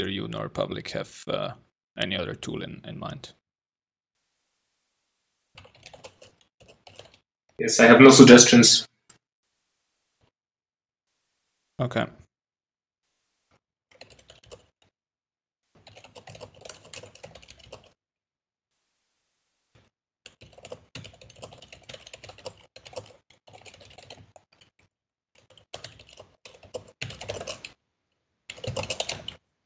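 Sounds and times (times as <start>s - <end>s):
speech: 0.0s - 3.4s, 7.6s - 8.9s, 11.8s - 12.2s
typing on a computer keyboard: 5.6s - 7.2s, 13.9s - 14.7s, 15.8s - 18.0s, 20.3s - 24.7s, 25.4s - 27.8s, 28.5s - 29.4s.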